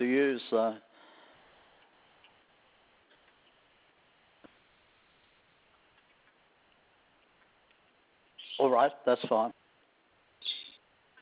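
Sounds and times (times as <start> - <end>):
speech: 0.0 - 0.9, 8.6 - 9.6
harsh bird squawk: 8.4 - 8.7, 10.4 - 10.8
faint short bird chirp: 10.4 - 10.8.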